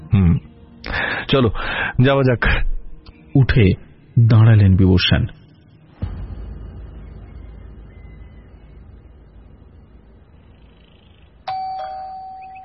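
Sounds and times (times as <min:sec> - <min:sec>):
speech: 0:00.2 - 0:00.5, 0:01.3 - 0:02.7, 0:03.4 - 0:05.4
low hiss: 0:00.2 - 0:12.6
electric calling bell rung at a front door: 0:11.5 - 0:12.6.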